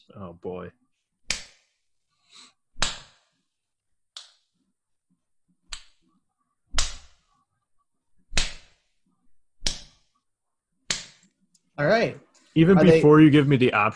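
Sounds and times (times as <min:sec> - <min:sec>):
speech: 0:00.2 - 0:00.8, 0:11.8 - 0:13.9
sharp slaps: 0:01.3 - 0:01.8, 0:02.8 - 0:03.3, 0:04.2 - 0:04.5, 0:05.7 - 0:06.0, 0:06.7 - 0:07.3, 0:08.3 - 0:08.9, 0:09.6 - 0:10.1, 0:10.9 - 0:11.3.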